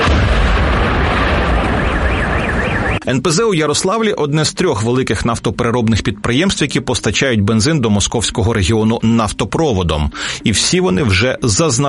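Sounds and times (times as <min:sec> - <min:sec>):
powerful explosion after drone strike: 0:00.0 - 0:03.0
speech: 0:03.1 - 0:11.8.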